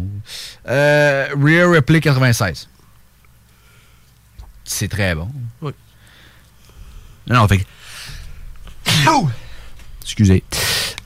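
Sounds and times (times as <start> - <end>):
speech: 0.2 - 2.7, 4.7 - 5.8, 7.3 - 8.2, 9.0 - 9.4, 10.0 - 10.7
sneeze: 8.9 - 9.4.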